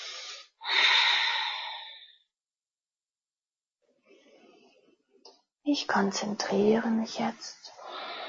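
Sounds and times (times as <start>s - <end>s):
person breathing out slowly during a guided meditation: 0.0s - 2.2s, 7.8s - 8.2s
speech: 5.7s - 7.6s.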